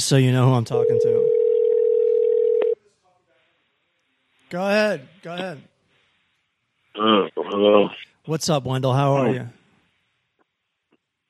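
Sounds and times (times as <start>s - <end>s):
speech: 0.1s - 1.4s, 4.5s - 5.7s, 7.0s - 9.6s
telephone dial tone before a phone call: 0.9s - 2.8s.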